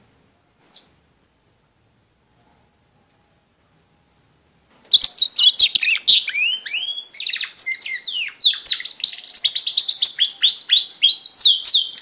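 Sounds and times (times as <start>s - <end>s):
Border canary singing: 0.6s - 1.0s, 4.9s - 12.0s.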